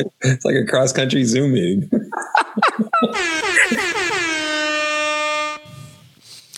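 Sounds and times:
speech: 0:00.0 - 0:02.0, 0:02.7 - 0:04.0
laughter: 0:01.9 - 0:04.0
loud blaring air horn blast: 0:03.2 - 0:06.1.

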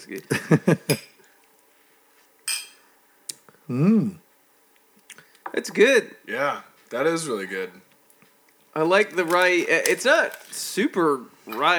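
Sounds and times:
speech: 0:00.0 - 0:01.1, 0:03.7 - 0:04.2, 0:05.5 - 0:07.8, 0:08.8 - 0:11.7
glasses of rye whiskey clinking in a toast: 0:02.5 - 0:02.8.

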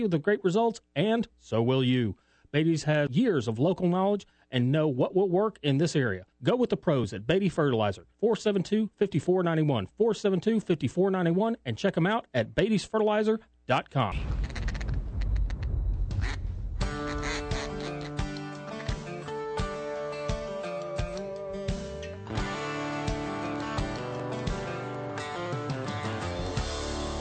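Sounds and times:
speech: 0:00.0 - 0:14.6
high-ball duck call quacking: 0:14.4 - 0:19.1
musical backing: 0:16.1 - 0:27.2.

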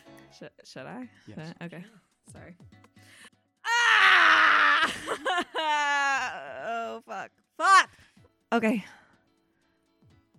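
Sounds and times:
speech: 0:00.4 - 0:03.3, 0:04.9 - 0:09.0
person screaming: 0:03.7 - 0:07.0, 0:07.6 - 0:07.9.

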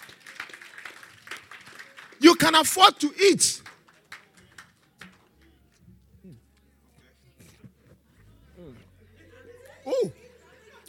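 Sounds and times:
crowd clapping: 0:00.0 - 0:05.5
speech: 0:02.4 - 0:03.7.

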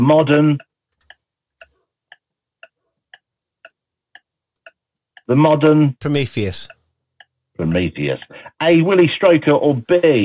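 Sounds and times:
speech: 0:00.0 - 0:00.7, 0:05.3 - 0:06.8, 0:07.6 - 0:10.2
quiz countdown clock ticking: 0:00.6 - 0:05.3, 0:06.0 - 0:07.5.

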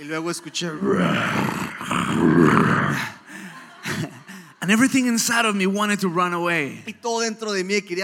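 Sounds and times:
speech: 0:00.0 - 0:03.2, 0:04.7 - 0:08.0
laughter: 0:00.1 - 0:05.8
deep rumbling lion roar fading into a growl: 0:00.8 - 0:03.2.

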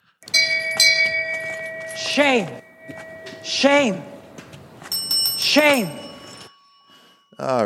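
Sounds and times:
small hand bell ringing: 0:00.2 - 0:07.6
speech: 0:02.2 - 0:04.1, 0:05.4 - 0:06.0, 0:07.4 - 0:07.6.

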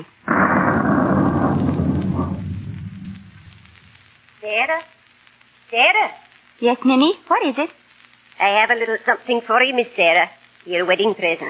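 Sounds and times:
loud roll of thunder: 0:00.0 - 0:04.1
speech: 0:04.7 - 0:04.9, 0:05.7 - 0:07.8, 0:08.4 - 0:11.4.

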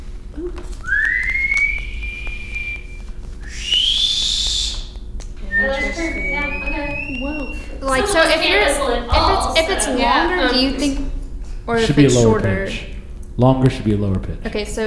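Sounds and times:
person whistling through the teeth: 0:00.7 - 0:08.4
speech: 0:08.2 - 0:11.1, 0:11.7 - 0:14.8.

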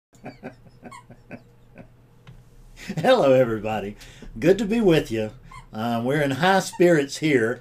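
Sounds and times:
speech: 0:00.2 - 0:01.1, 0:02.9 - 0:07.5
laughter: 0:00.2 - 0:01.9
dog squeaking a squeak toy: 0:05.4 - 0:05.8.

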